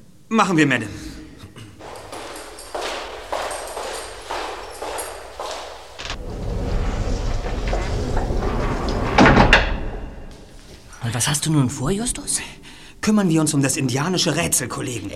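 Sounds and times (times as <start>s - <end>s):
speech: 0.3s - 1.1s, 11.2s - 15.1s
footsteps: 1.8s - 9.2s, 9.8s - 11.0s
door pulled shut with a solid thud: 6.0s - 10.3s
low rumbling background: 6.0s - 11.2s.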